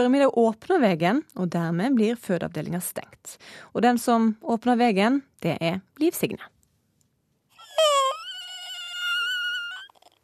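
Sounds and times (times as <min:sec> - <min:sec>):
speech: 0:00.0 - 0:06.6
newborn baby wailing in a maternity ward: 0:07.6 - 0:10.1.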